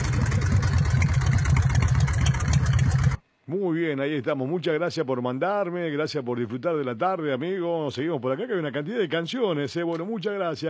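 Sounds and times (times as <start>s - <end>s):
Harley motorcycle engine idling: 0.0s - 3.2s
speech: 3.6s - 10.6s.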